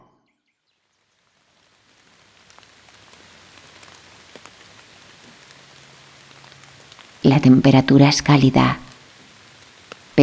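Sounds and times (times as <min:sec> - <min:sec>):
steady rain falling: 0:00.8 - 0:10.2
scattered sharper raindrops tapping: 0:02.0 - 0:10.2
speech: 0:07.2 - 0:08.8.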